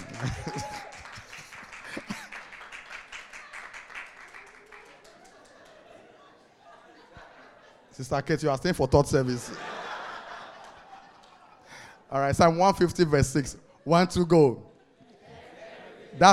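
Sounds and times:
church audience clapping during a service: 0.0s - 6.0s, 10.5s - 11.5s
people laughing: 0.0s - 12.0s, 12.8s - 16.3s
speech: 0.2s - 0.7s, 8.0s - 9.7s, 12.1s - 14.7s, 16.2s - 16.3s.

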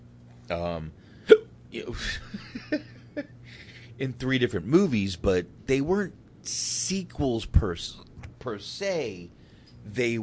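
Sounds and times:
speech: 0.5s - 10.2s
person hiccuping: 1.2s - 1.5s.

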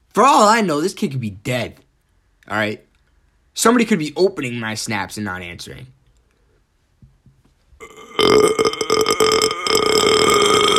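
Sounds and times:
speech: 0.2s - 1.8s, 2.5s - 2.9s, 3.6s - 6.0s, 7.8s - 8.7s
long loud burp: 7.8s - 10.7s.

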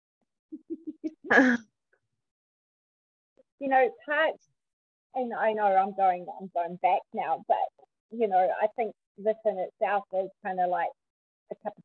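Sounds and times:
person coughing in a fit: 1.3s - 1.6s
speech: 1.3s - 1.7s, 3.6s - 4.5s, 5.2s - 11.8s.

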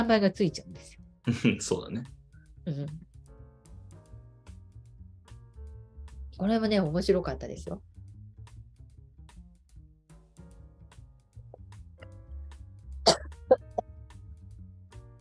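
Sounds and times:
speech: 0.0s - 3.1s, 6.4s - 7.9s
laughter: 1.3s - 1.6s
person clearing throat: 1.3s - 1.6s, 13.1s - 13.8s.

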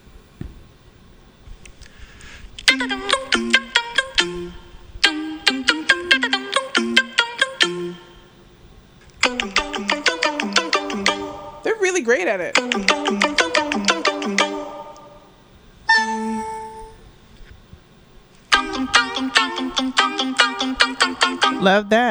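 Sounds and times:
voices singing imitations of phone alert and ringtone sounds: 2.7s - 8.2s, 9.2s - 11.8s, 12.5s - 15.3s, 18.5s - 22.0s.

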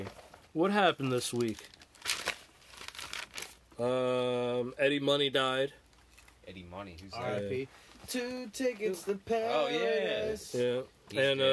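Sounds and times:
speech: 0.0s - 1.7s, 3.8s - 5.8s, 6.5s - 11.5s
notebook paper rustling and crinkling as it is handled: 1.4s - 3.6s.

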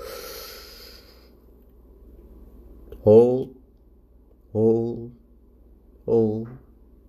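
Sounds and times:
deep inhale through the nose in a breathing exercise: 0.0s - 1.4s
speech: 3.0s - 3.6s.

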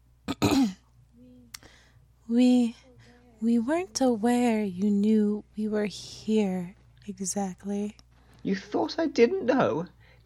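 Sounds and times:
longer voiced hum: 0.0s - 10.2s
voice imitating a ghost clearing its throat: 0.3s - 0.8s
speech: 2.3s - 2.8s, 3.4s - 10.2s.

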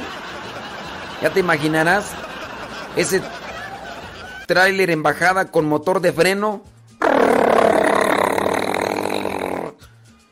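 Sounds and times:
laughter: 0.0s - 4.7s
speech: 1.2s - 2.2s, 2.9s - 3.4s, 4.5s - 6.7s
person imitating loud snoring: 7.0s - 9.9s.

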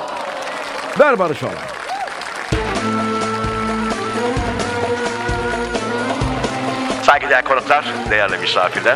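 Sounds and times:
crowd applause: 0.0s - 7.1s
speech: 1.0s - 1.7s, 7.1s - 8.9s
loud music playing chords: 2.6s - 8.9s.

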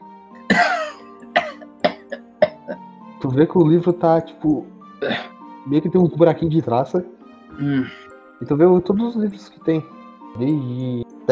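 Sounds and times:
person coughing: 0.5s - 2.8s, 5.0s - 5.4s, 7.6s - 8.1s
speech: 3.2s - 11.3s.

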